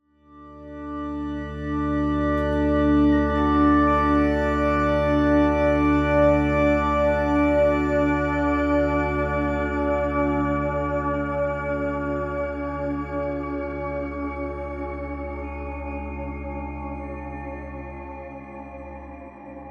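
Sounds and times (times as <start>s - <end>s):
organ: 0.3s - 15.3s.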